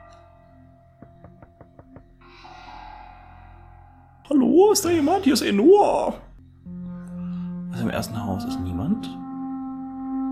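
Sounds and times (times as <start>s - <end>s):
knocking on a house door: 1.0s - 2.2s
speech: 4.3s - 6.2s, 7.9s - 9.2s.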